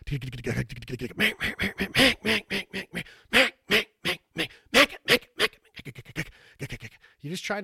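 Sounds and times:
speech: 0:00.1 - 0:03.8
duck call blown imitating quacks of a flock of ducks on the water: 0:01.2 - 0:05.7.

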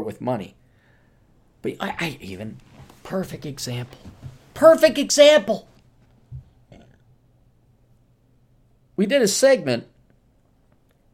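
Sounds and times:
speech: 0:00.0 - 0:00.6, 0:01.6 - 0:05.7, 0:09.0 - 0:09.9
short low burp: 0:06.7 - 0:07.1.

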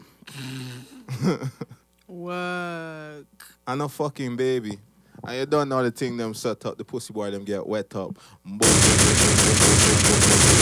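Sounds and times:
speech: 0:01.2 - 0:10.5
dense loud burst of rapid gunfire: 0:08.6 - 0:10.6.

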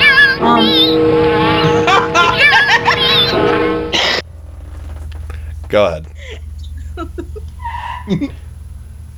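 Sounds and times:
car tires squealing out front of the building: 0:00.0 - 0:04.2, 0:07.4 - 0:08.5
low car engine rumble: 0:00.0 - 0:09.1
laughter: 0:01.6 - 0:04.2, 0:06.2 - 0:08.4
speech: 0:05.7 - 0:06.4, 0:07.0 - 0:08.4.

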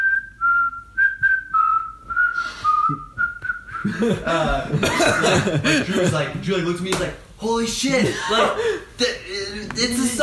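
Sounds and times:
person whistling a tune from a film scene: 0:00.0 - 0:04.0
laughter: 0:03.8 - 0:06.4, 0:07.9 - 0:08.9
speech: 0:03.8 - 0:10.2.

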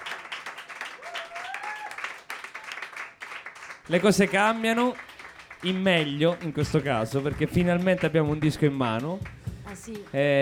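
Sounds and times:
live audience applause in venue: 0:00.0 - 0:10.4
speech: 0:03.9 - 0:10.4.

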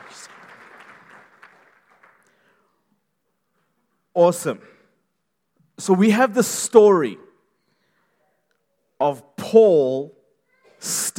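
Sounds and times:
audience applause: 0:00.0 - 0:02.5
speech: 0:04.2 - 0:04.8, 0:05.8 - 0:07.3, 0:09.0 - 0:10.2, 0:10.8 - 0:11.1.

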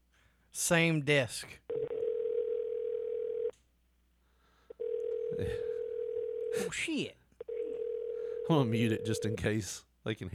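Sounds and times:
speech: 0:00.6 - 0:01.9, 0:05.4 - 0:05.7, 0:06.6 - 0:07.2, 0:08.5 - 0:10.3
telephone ringing tone on an outgoing call: 0:01.7 - 0:03.5, 0:04.8 - 0:06.7, 0:07.4 - 0:09.5.

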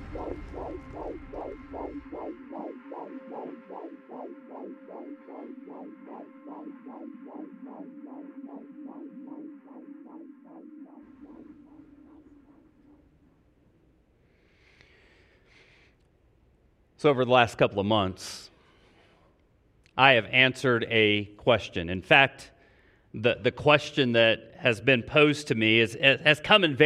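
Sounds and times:
rapid steady heartbeat: 0:00.0 - 0:13.0
continuous whooshing hum: 0:00.0 - 0:14.1
speech: 0:05.0 - 0:08.3, 0:17.0 - 0:18.5, 0:20.0 - 0:22.5, 0:23.1 - 0:26.8.

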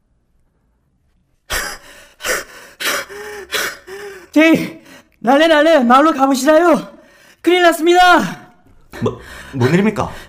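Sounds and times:
person panting heavily, out of breath: 0:01.5 - 0:05.0
speech: 0:04.4 - 0:08.4, 0:09.0 - 0:10.2.

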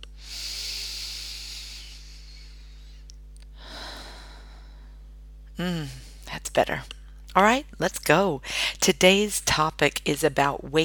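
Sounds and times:
low steady hum: 0:00.0 - 0:10.8
breathy exhale through the mouth: 0:00.2 - 0:05.0
deep inhale through the nose: 0:00.2 - 0:05.0
speech: 0:05.6 - 0:10.8.

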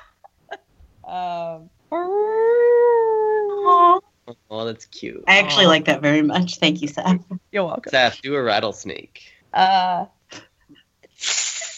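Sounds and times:
speech: 0:01.1 - 0:01.8, 0:04.6 - 0:10.5
person imitating a beluga whale with clicks and whistle-like wails: 0:01.9 - 0:04.0.

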